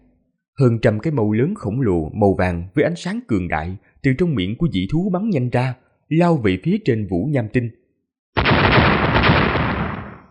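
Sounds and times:
speech: 0.6s - 7.8s
explosions from the weapons of a giant silver battleship: 8.4s - 10.2s.

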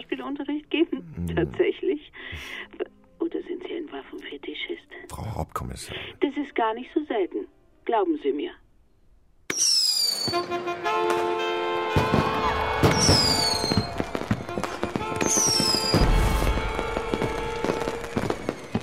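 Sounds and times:
speech: 0.2s - 2.8s, 5.3s - 8.6s, 10.3s - 13.6s
shrill firework whistles falling in pitch: 9.5s - 10.5s, 12.5s - 18.8s
Polish firecrackers crackling bangs during a stage performance: 9.5s - 18.8s.

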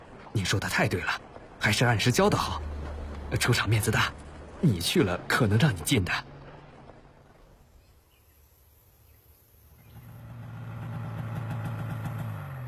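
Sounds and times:
speech: 0.4s - 2.7s, 3.3s - 6.3s
motorcycle engine idling and riding off: 9.8s - 12.6s.

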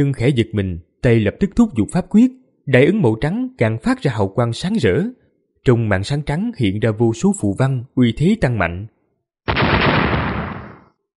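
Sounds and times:
speech: 0.0s - 8.9s
loud explosion sound effect: 9.5s - 11.0s.

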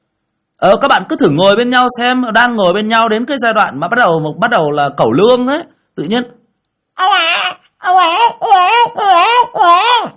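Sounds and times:
speech: 0.6s - 6.4s, 7.0s - 10.1s
baby crying loudly: 7.0s - 10.1s.

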